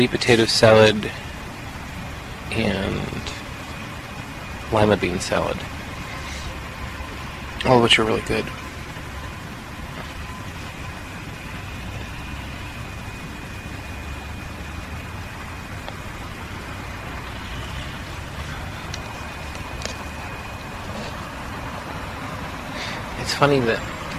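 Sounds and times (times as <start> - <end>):
speech: 0.0 - 1.2, 2.5 - 3.2, 4.7 - 5.7, 7.6 - 8.6, 23.4 - 23.9
steady broadband roar of road traffic: 0.0 - 24.1.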